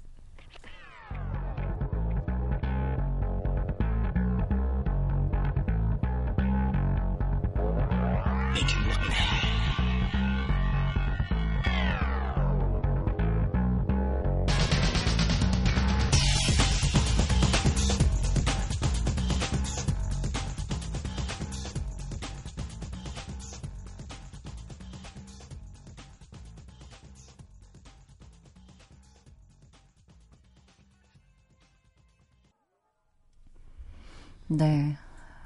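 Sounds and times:
electronic instrumental film soundtrack music with pulsing beat and deep bass: 0:01.0 - 0:27.2.

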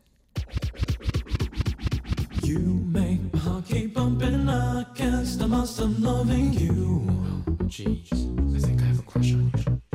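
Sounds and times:
dance track intro with fast punchy beat: 0:00.4 - 0:02.6
speech: 0:02.5 - 0:08.4, 0:09.0 - 0:09.8.

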